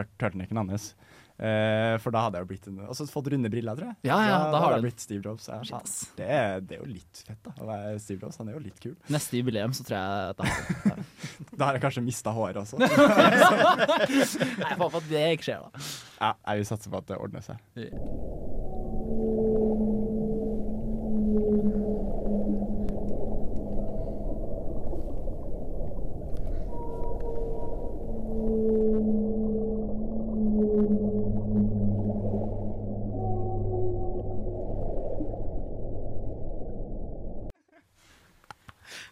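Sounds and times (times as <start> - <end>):
speech: 0.0 - 18.5
laughter: 10.4 - 11.4, 12.8 - 15.1
steady underwater rumble: 17.9 - 37.5
whale song with long low moaning tones: 17.9 - 37.5.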